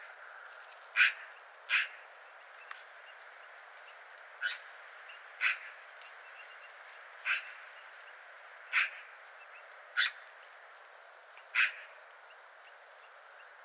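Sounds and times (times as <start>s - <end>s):
Eurasian magpie Pica pica harsh rasping chack calls: 0.9s - 2.0s, 5.4s - 5.8s, 7.2s - 7.6s, 8.7s - 9.1s, 11.5s - 11.9s.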